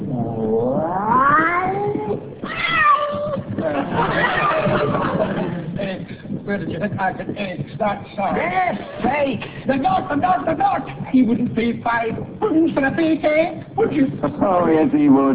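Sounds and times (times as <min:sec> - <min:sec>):
kitten meows played slowed down: 0:01.1 - 0:03.4
laughter: 0:03.6 - 0:06.2, 0:08.4 - 0:10.3
speech: 0:06.6 - 0:15.3.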